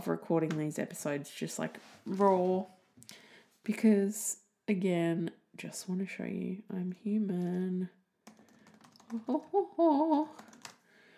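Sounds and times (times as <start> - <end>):
speech: 0.0 - 8.0, 9.1 - 10.5
typing on a computer keyboard: 8.2 - 9.4, 10.3 - 10.8
wordless voiced hum: 9.1 - 10.4.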